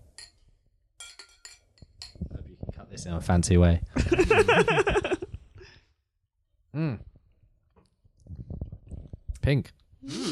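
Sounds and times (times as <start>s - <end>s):
glasses clinking in a toast: 1.0s - 2.3s
speech: 3.0s - 5.1s, 9.5s - 10.2s
laughter: 4.0s - 5.3s.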